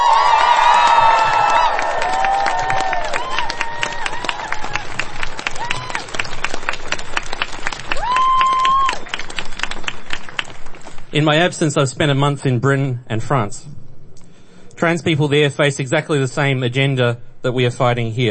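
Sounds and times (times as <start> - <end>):
crowd cheering with high whoops and shouts: 0.0 - 9.9
crowd clapping: 0.0 - 11.4
speech: 11.2 - 13.8, 14.8 - 18.2.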